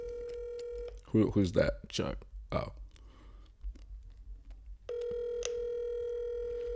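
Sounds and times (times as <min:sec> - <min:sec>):
steady electronic phone ringing tone of an outgoing call to a cell phone: 0:00.0 - 0:01.0, 0:04.9 - 0:06.7
low noise: 0:00.0 - 0:06.7
speech: 0:01.1 - 0:02.8.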